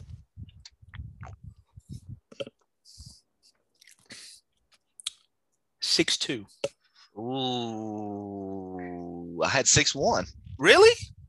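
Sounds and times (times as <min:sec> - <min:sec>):
person sipping a drink: 0:00.5 - 0:02.2, 0:03.6 - 0:05.3
speech: 0:06.0 - 0:06.6, 0:07.2 - 0:08.5, 0:09.4 - 0:11.1.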